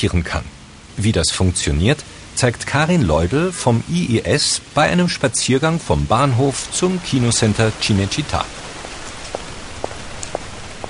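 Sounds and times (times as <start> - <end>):
speech: 0.0 - 8.7
heavy rain pouring down on a city street: 0.0 - 10.8.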